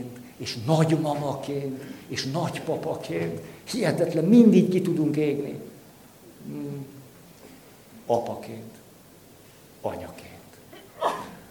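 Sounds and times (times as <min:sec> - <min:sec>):
speech: 0:00.0 - 0:05.7, 0:06.4 - 0:07.0, 0:08.1 - 0:08.8, 0:09.8 - 0:10.3
person sneezing: 0:10.7 - 0:11.4.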